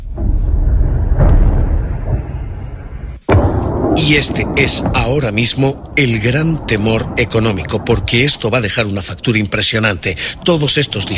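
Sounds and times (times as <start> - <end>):
explosions from American and Israeli airstrikes on Tehran: 0.0 - 11.1
speech: 4.0 - 11.1.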